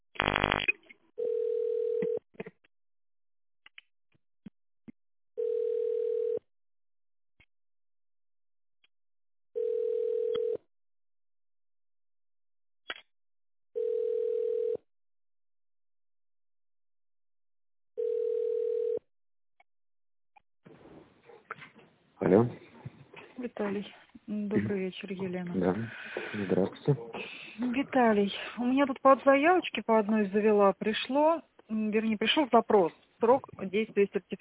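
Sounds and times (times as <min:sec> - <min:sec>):
phone ringback tone while placing a call: 0:01.2 - 0:02.2, 0:05.4 - 0:06.4, 0:09.6 - 0:10.6, 0:13.8 - 0:14.8, 0:18.0 - 0:19.0
speech: 0:23.6 - 0:34.4.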